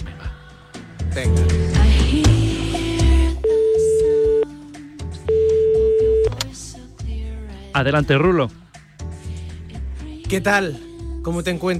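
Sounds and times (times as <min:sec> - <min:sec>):
speech: 0:01.2 - 0:02.3, 0:07.8 - 0:08.6, 0:10.3 - 0:11.7
telephone electronic ringing tones: 0:03.4 - 0:04.5, 0:05.3 - 0:06.3.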